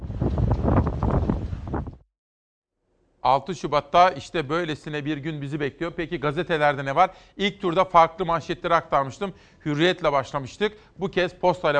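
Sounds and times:
strong storm wind with heavy rain buffeting a microphone in İzmir: 0:00.0 - 0:02.0
speech: 0:03.2 - 0:11.7.

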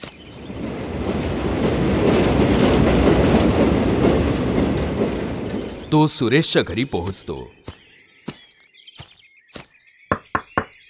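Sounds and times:
train running on rails during a journey: 0:00.0 - 0:07.7
speech: 0:05.9 - 0:07.7.

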